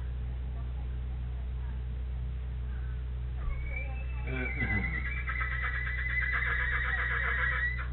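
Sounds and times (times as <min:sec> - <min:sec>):
steady low hum: 0:00.0 - 0:07.9
horse neighing: 0:03.5 - 0:07.9.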